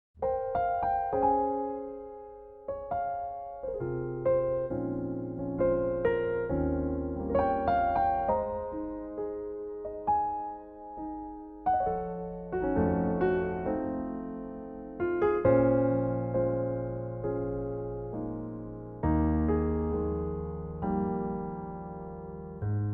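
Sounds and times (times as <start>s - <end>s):
piano playing in A flat: 0.2s - 22.9s.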